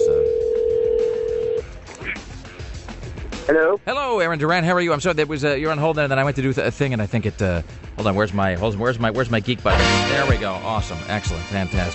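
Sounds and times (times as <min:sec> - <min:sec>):
low electronic phone line ringback tone: 0:00.0 - 0:01.6
speech: 0:03.5 - 0:11.9.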